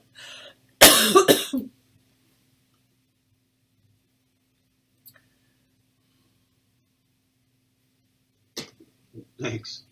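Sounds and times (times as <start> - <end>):
person coughing harshly: 0.8 - 1.7
speech: 1.0 - 1.7, 9.4 - 9.9.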